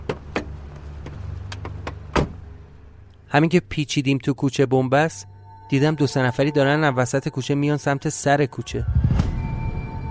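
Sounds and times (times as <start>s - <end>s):
low car engine hum while parking: 0.0s - 3.2s
speech: 3.3s - 9.3s.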